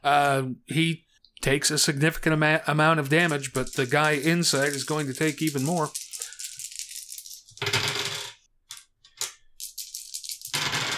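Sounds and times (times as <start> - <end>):
speech: 0.0 - 6.0
handfuls of dice clattering across a hard surface: 3.0 - 10.9.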